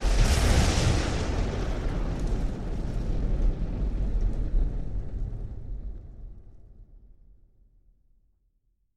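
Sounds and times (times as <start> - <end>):
punchy thunder: 0.0 - 6.8.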